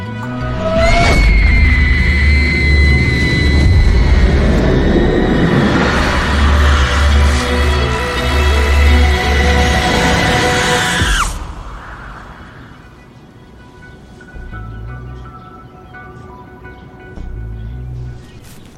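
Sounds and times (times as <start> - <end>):
quiet rumbling background: 0.0 - 15.4
loud piercing scream: 0.5 - 11.6.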